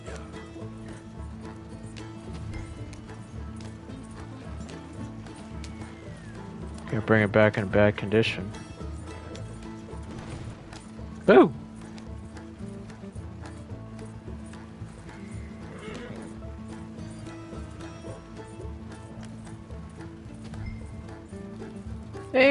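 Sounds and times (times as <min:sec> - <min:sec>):
horse hooves of horses pulling a stagecoach clip-clopping: 0:00.0 - 0:22.5
horse whinnying: 0:05.3 - 0:06.9, 0:15.0 - 0:18.3
speech: 0:06.9 - 0:08.6.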